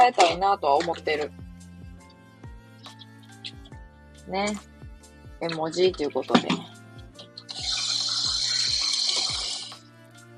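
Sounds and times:
kitchen tap water running while washing dishes: 0.0s - 1.4s, 5.4s - 9.8s
speech: 0.0s - 1.4s, 4.3s - 4.7s, 5.4s - 6.8s
dishes being handled while washing: 5.9s - 6.7s.

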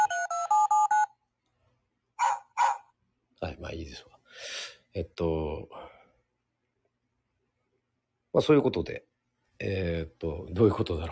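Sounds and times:
telephone keypad dual-pitched dialing tones: 0.0s - 1.2s
speech: 3.4s - 5.8s, 8.4s - 11.1s.

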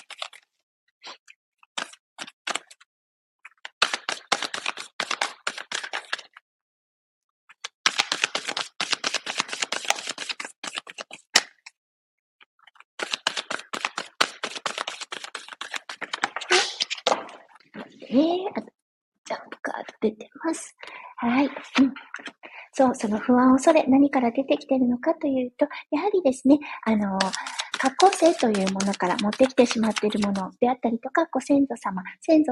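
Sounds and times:
tarot advice cards being drawn and handled: 0.0s - 0.4s, 1.7s - 2.8s, 3.5s - 6.4s, 7.6s - 11.8s, 12.6s - 17.4s, 27.2s - 30.4s
speech: 20.0s - 22.1s, 22.8s - 32.5s.

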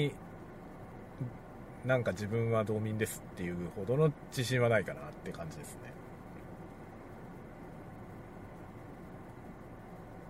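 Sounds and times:
speech: 0.0s - 0.2s, 1.2s - 6.0s
car cabin rumble while driving: 0.0s - 10.2s.

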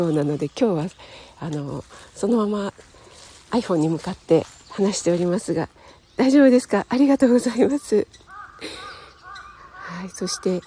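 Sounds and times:
speech: 0.0s - 2.9s, 3.5s - 8.9s, 9.9s - 10.6s
crow cawing on a misty morning in Shinshu Japan: 8.3s - 10.6s.

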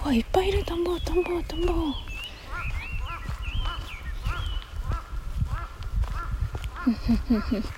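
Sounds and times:
speech: 0.1s - 2.1s, 6.9s - 7.7s
several crows cawing: 2.5s - 7.0s.

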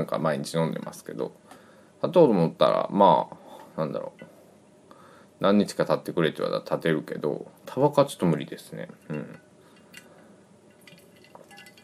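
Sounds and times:
speech: 0.0s - 4.3s, 5.4s - 9.4s
soft room hiss: 0.0s - 11.8s
ice cubes clinking in a highball glass while drinking: 10.7s - 11.8s.

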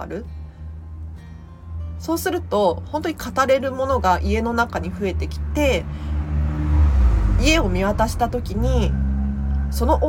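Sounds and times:
speech: 0.0s - 0.4s, 2.0s - 6.2s, 7.4s - 9.0s, 9.7s - 10.0s
car passing by outdoors: 4.5s - 10.0s.

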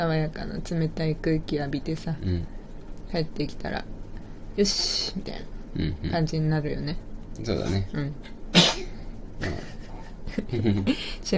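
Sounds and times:
speech: 0.0s - 4.0s, 4.6s - 9.7s, 10.4s - 11.3s
person sneezing: 8.5s - 9.0s
laughter: 9.4s - 11.1s.

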